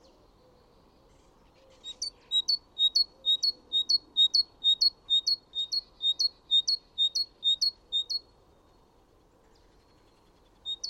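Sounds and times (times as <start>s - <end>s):
great tit singing: 1.8s - 8.2s, 10.6s - 10.8s.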